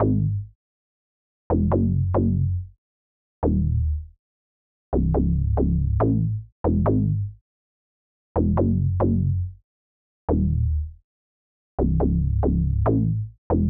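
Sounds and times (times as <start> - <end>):
analog synthesizer bass in C sharp minor: 0.0 - 0.5, 1.5 - 2.7, 3.4 - 4.1, 5.0 - 7.4, 8.4 - 9.6, 10.3 - 11.0, 11.8 - 13.6.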